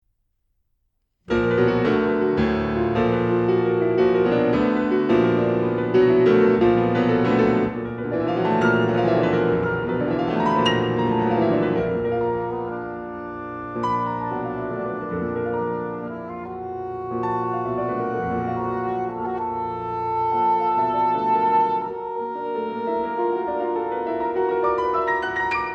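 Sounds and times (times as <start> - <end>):
piano: 1.2 - 25.7
cello: 1.3 - 25.7.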